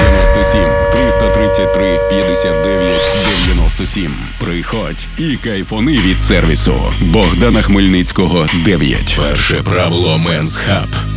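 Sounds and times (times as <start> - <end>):
air raid siren: 0.0 - 4.6
man speaking urgently: 0.0 - 11.1
speech: 1.5 - 11.1.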